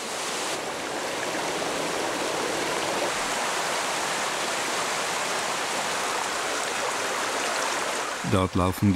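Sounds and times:
rushing stream torrent: 0.0 - 8.9
speech: 8.3 - 8.9.

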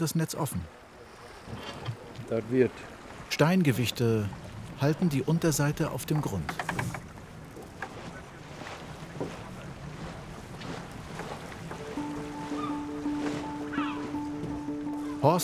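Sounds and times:
speech: 0.0 - 0.9, 1.5 - 7.0
lagoon water lapping against a boat: 0.0 - 15.4
wind over open lagoon water: 0.0 - 15.4
sailing fishing boat hull knocking and creaking: 5.7 - 15.1.

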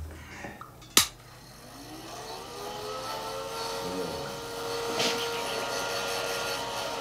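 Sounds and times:
hair dryer motor whining and blowing air: 1.3 - 6.9.

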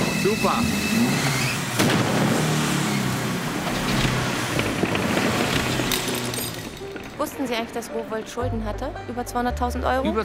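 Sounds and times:
run-down car engine revving: 0.0 - 7.2
speech: 0.2 - 1.4, 7.2 - 10.2.

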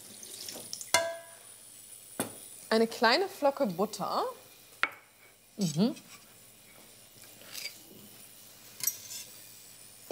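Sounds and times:
water poured into a metal casserole holding milk: 0.0 - 1.5
speech: 2.7 - 4.4, 5.6 - 6.2.

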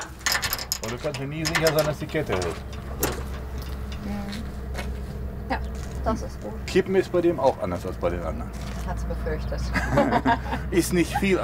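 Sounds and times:
heavy truck cargo door opening under pressure: 0.0 - 4.8
steady low rumble: 0.0 - 10.7
speech: 0.9 - 3.2, 5.5 - 11.4
laughter: 9.7 - 11.4.

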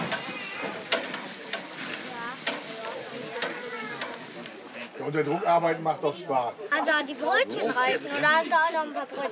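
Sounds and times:
bratwurst sizzling on a grill at a campsite: 0.0 - 6.5
speech: 5.0 - 9.2.

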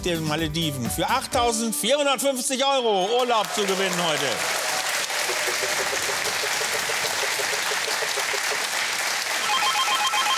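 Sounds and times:
speech: 0.0 - 4.7
steady wash of loud applause-like noise: 3.0 - 10.3
telephone ringing in a rapid repeating trill: 9.4 - 10.3.

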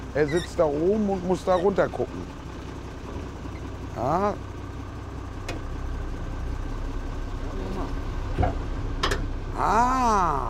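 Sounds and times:
learner driver's tractor engine idling: 0.0 - 10.4
speech: 0.2 - 2.4, 4.0 - 4.5, 9.6 - 10.4
voice-like tonal sound: 9.5 - 10.4.

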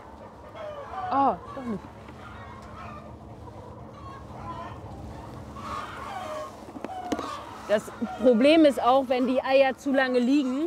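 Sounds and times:
hens clucking and murmuring in a laying barn: 0.0 - 10.6
sharp hen calls: 0.2 - 8.7
speech: 1.1 - 2.0, 7.7 - 10.6.

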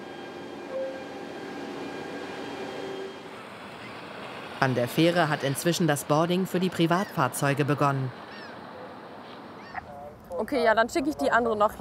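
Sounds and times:
thin high whine: 0.0 - 4.0
container freight train rumbling while departing: 0.0 - 9.6
speech: 4.6 - 8.2, 10.4 - 11.8.

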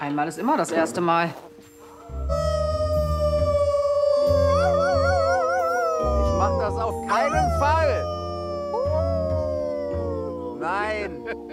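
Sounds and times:
speech: 0.0 - 2.4, 6.7 - 8.1
wolves howling: 1.9 - 11.5.

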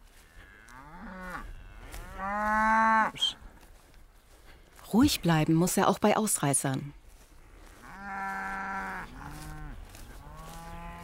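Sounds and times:
cattle lowing as a herd is moved to new pasture: 0.2 - 3.3, 7.7 - 11.0
speech: 4.9 - 7.0.

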